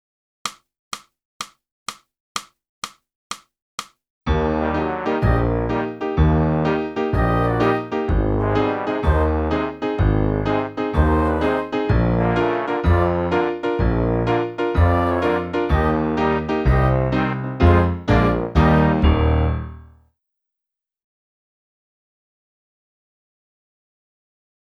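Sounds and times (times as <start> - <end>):
saxophone: 4.6 - 19.4.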